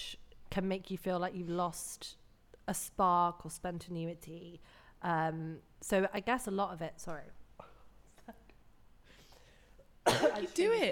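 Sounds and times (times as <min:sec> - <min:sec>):
speech: 0:00.5 - 0:07.4, 0:10.4 - 0:10.8
single sharp cough: 0:10.0 - 0:10.6.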